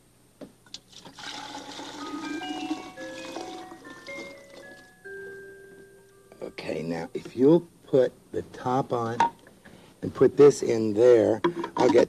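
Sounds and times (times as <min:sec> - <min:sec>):
chilled cream mixed with sugar pouring into a metal ice cream canister: 0:00.8 - 0:04.7
speech: 0:07.0 - 0:09.3, 0:10.0 - 0:12.0.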